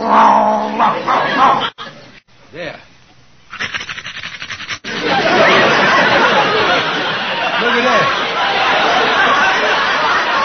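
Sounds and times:
man on all fours imitating a dog's growl: 0.0 - 0.8
speech: 0.8 - 1.7
laughter: 0.9 - 2.2, 4.8 - 10.4.

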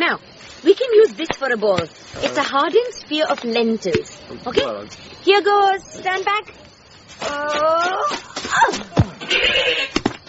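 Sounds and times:
rustling: 0.0 - 10.2
scuffling: 0.0 - 10.2
speech: 0.1 - 6.6, 7.2 - 10.0
goat bleating: 9.2 - 10.0.

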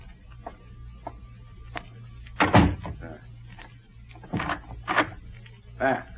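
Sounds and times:
door pushed shut: 2.4 - 3.0.

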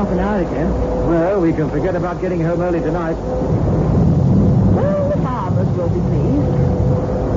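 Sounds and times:
speech: 0.0 - 7.3
storm wind roaring at night: 0.0 - 7.3.

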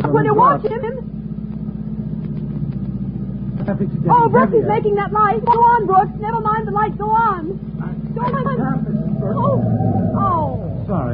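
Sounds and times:
Cadillac car engine rumble driving in pursuit through traffic: 0.0 - 11.1
speech: 0.1 - 1.1, 3.6 - 11.1.

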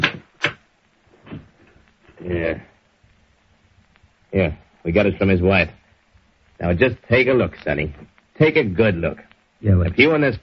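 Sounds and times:
sharp wooden clunks: 0.0 - 0.6
speech: 2.2 - 2.7, 4.4 - 5.8, 6.6 - 10.4.

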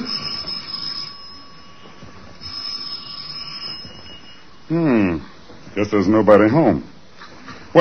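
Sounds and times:
doorbell ringing: 0.0 - 4.7
faint hum: 0.0 - 7.7
speech: 4.7 - 6.9.

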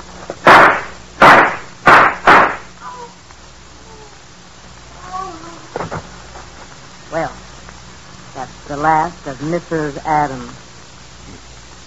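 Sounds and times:
faint scattered sounds: 0.0 - 11.8
gunshots: 0.4 - 2.7
speech: 7.1 - 7.4, 8.7 - 10.6.

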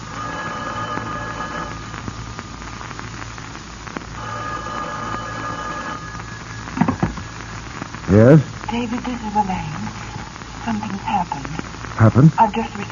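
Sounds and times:
hiss and crackle: 0.0 - 12.8
telephone ringing: 0.2 - 1.8, 4.2 - 7.2
sharp knocks: 6.8 - 7.3
speech: 8.1 - 10.0, 10.6 - 12.8.

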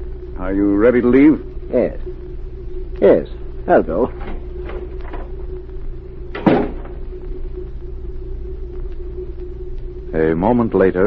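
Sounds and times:
steady low rumble: 0.0 - 11.0
speech: 0.4 - 2.2, 3.0 - 4.4, 10.2 - 11.0
door opening and closing: 6.3 - 7.0.

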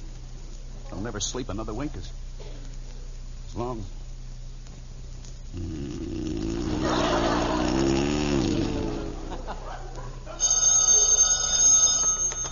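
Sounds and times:
speech: 1.0 - 2.5, 3.6 - 4.0
laughter: 6.5 - 10.4
telephone bell ringing: 10.4 - 12.4.

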